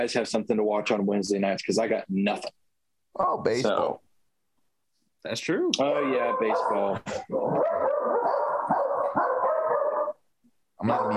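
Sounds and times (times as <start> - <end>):
speech: 0.0 - 2.6, 3.2 - 4.0, 5.2 - 8.2, 10.8 - 11.1
dog barking and baying: 5.8 - 10.2, 10.8 - 11.1.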